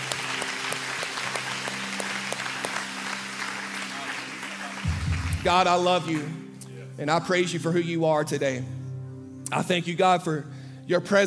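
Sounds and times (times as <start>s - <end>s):
audience clapping hands in praise: 0.0s - 6.7s
speech: 5.4s - 6.4s, 7.0s - 8.8s, 9.5s - 11.2s.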